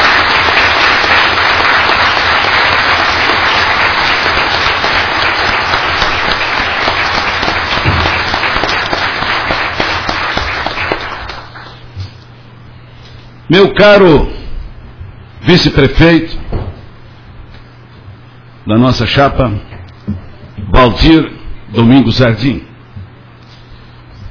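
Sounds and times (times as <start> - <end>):
loud sustained applause from a large audience: 0.0 - 11.9
speech: 13.5 - 14.4, 15.4 - 16.4, 18.7 - 22.7.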